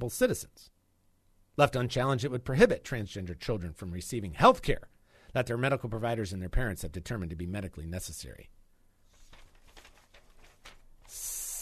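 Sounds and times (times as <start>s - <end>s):
speech: 0.0s - 0.8s, 1.6s - 8.6s
snake hissing: 11.1s - 11.6s.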